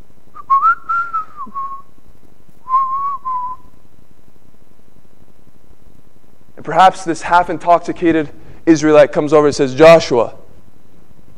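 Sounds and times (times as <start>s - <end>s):
person whistling a short tune: 0.4s - 1.8s, 2.7s - 3.7s
speech: 6.7s - 10.4s.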